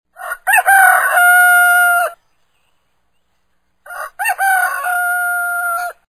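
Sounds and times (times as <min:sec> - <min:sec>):
rooster crowing ringtone: 0:00.2 - 0:02.2, 0:03.9 - 0:06.1.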